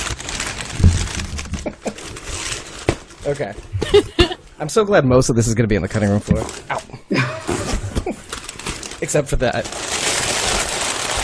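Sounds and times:
wrapping paper crinkling as gift is torn open: 0:00.0 - 0:03.5, 0:07.5 - 0:11.2
soft thump: 0:00.8 - 0:01.7
speech: 0:03.2 - 0:06.8, 0:09.1 - 0:09.9.

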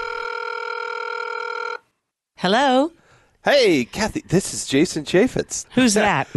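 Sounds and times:
electronic ringing tone of an outgoing phone call: 0:00.0 - 0:01.9
speech: 0:02.4 - 0:06.3.

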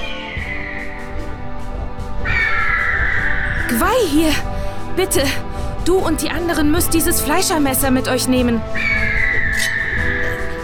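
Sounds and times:
eagle screeching: 0:00.0 - 0:01.1, 0:02.3 - 0:03.7, 0:08.8 - 0:10.4
speech: 0:03.7 - 0:09.0.

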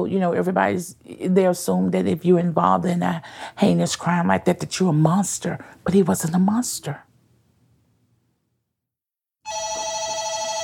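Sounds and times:
speech: 0:00.0 - 0:07.1
front desk telephone ringing with a bright electronic ring: 0:09.4 - 0:10.6.

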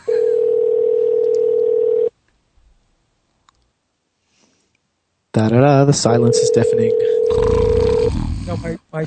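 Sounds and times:
telephone ringing tone of an outgoing call: 0:00.1 - 0:02.1, 0:06.2 - 0:08.1
speech: 0:05.4 - 0:09.0.

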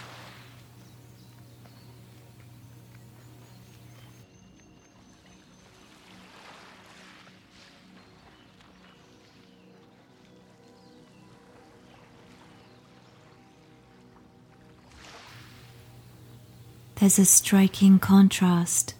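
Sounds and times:
ocean waves washing into a rocky cove with a volcanic stone beach: 0:00.0 - 0:00.8
steady low engine-like hum: 0:00.0 - 0:04.2, 0:15.4 - 0:18.9
speech: 0:17.0 - 0:18.9.

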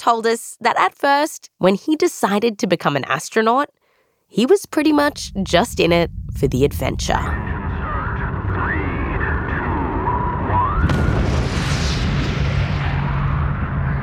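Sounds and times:
speech: 0:00.0 - 0:07.5
warbling voice-like tones: 0:04.9 - 0:10.9
solid rocket motors igniting for a rocket launch: 0:05.0 - 0:14.0.

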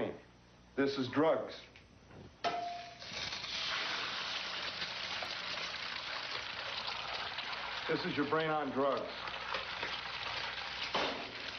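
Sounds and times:
speech: 0:00.8 - 0:01.8, 0:07.9 - 0:09.4
freshly cracked egg frying in a hot frying pan: 0:03.0 - 0:11.5.

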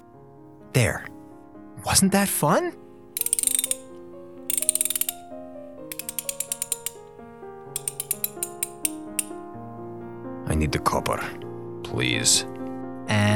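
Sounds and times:
speech: 0:00.7 - 0:01.1, 0:01.8 - 0:02.8, 0:10.6 - 0:13.3
socket wrench ratcheting: 0:03.2 - 0:03.9, 0:04.5 - 0:05.3, 0:05.9 - 0:07.1, 0:07.8 - 0:09.4.

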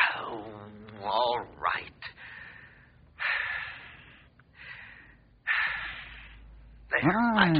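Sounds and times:
speech: 0:00.3 - 0:02.1, 0:07.0 - 0:07.5
deep audible breaths: 0:02.1 - 0:06.9.

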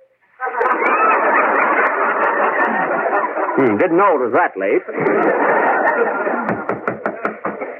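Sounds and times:
laughter: 0:00.4 - 0:07.7
speech: 0:03.6 - 0:06.7
knocking on a door: 0:06.5 - 0:07.6.

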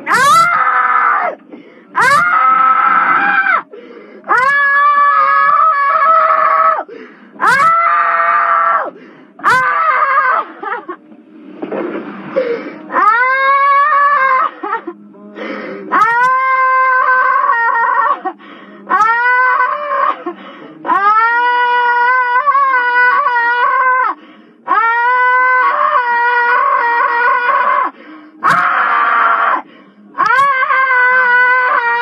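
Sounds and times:
woman screaming in a tantrum in the back seat of a police patrol car: 0:00.1 - 0:01.4, 0:02.0 - 0:03.7, 0:04.3 - 0:06.8, 0:07.4 - 0:10.8, 0:12.9 - 0:14.9, 0:15.9 - 0:18.4, 0:18.9 - 0:24.2, 0:24.7 - 0:31.9
woman gasping: 0:01.4 - 0:02.0, 0:03.6 - 0:04.4, 0:06.9 - 0:07.4, 0:12.3 - 0:12.9, 0:14.5 - 0:16.0, 0:18.3 - 0:18.9, 0:20.1 - 0:20.9, 0:27.8 - 0:28.5.

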